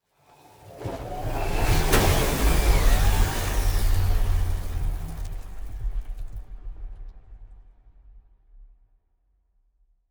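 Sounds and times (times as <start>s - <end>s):
transport ship moving: 0.6s - 6.4s.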